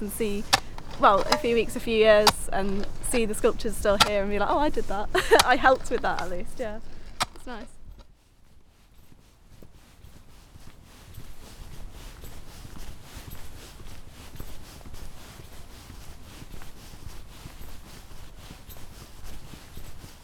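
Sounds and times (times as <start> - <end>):
speech: 0.0 - 7.8
broadband rustle of ground and wind: 0.0 - 8.0
footsteps crunching outdoors at a walking pace: 0.0 - 8.0.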